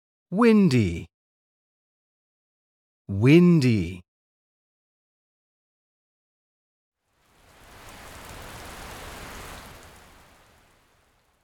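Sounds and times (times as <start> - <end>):
speech: 0.3 - 1.1, 3.1 - 4.0
steady rain: 7.0 - 11.4.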